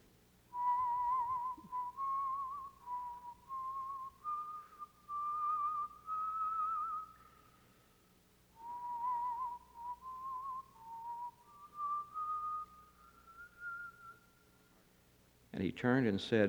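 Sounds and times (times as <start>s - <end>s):
faint hum: 0.0s - 16.4s
man whistling a slow steady tune in a room: 0.5s - 7.6s, 8.6s - 14.5s
speech: 15.6s - 16.4s.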